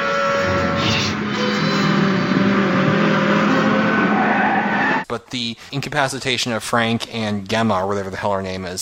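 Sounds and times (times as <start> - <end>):
truck engine rumbling as it drives along the street: 0.1 - 5.1
speech: 5.3 - 8.7.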